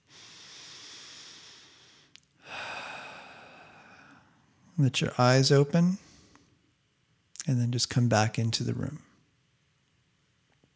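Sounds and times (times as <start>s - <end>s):
deep breaths in and out during a breath-focused meditation: 0.0s - 4.6s, 6.0s - 6.6s
speech: 4.8s - 6.1s, 7.5s - 9.1s.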